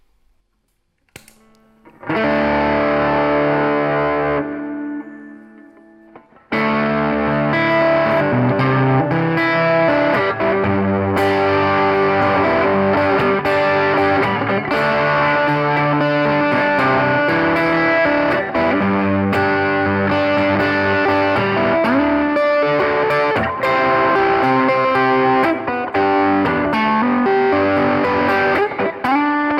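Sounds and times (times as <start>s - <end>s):
electric guitar through an external overdrive pedal into an amplifier: 1.7s - 29.5s.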